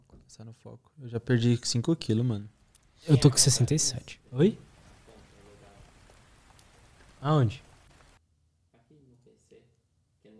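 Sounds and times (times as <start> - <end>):
speech: 0.3 - 4.7, 7.2 - 7.7
rain falling outside: 3.2 - 8.2.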